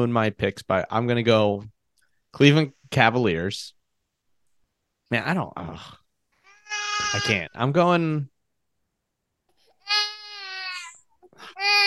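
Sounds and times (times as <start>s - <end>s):
speech: 0.0s - 1.7s, 2.3s - 3.8s, 5.1s - 6.0s, 7.0s - 8.3s
toddler girl wailing: 6.5s - 7.4s, 9.7s - 11.8s.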